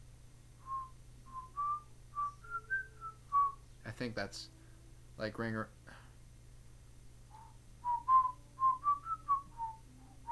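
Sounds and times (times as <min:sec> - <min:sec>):
faint low hum: 0:00.0 - 0:10.3
person whistling a short tune: 0:00.6 - 0:03.6, 0:07.3 - 0:10.3
speech: 0:04.0 - 0:04.6, 0:05.2 - 0:05.8.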